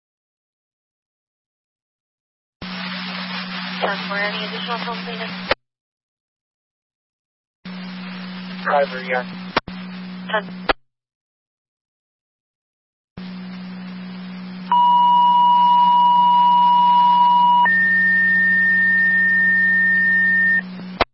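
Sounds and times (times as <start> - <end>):
low hum and static: 2.6 - 5.6, 7.7 - 10.8, 13.2 - 21.1
two-tone fire dispatch pager alert over a radio channel: 14.7 - 20.6.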